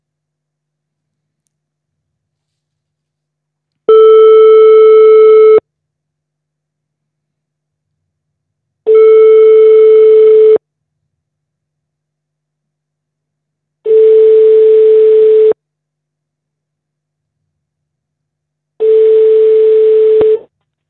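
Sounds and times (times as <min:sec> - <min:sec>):
telephone ringback tones while calls are placed: 0:03.9 - 0:05.6, 0:08.9 - 0:10.6, 0:13.9 - 0:15.6, 0:18.8 - 0:20.4.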